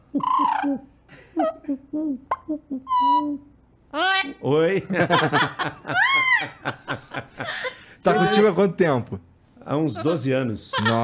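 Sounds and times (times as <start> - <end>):
imitated owl hoots: 0.0 - 3.5
speech: 0.1 - 11.0
laughter: 4.5 - 8.6, 10.0 - 11.0.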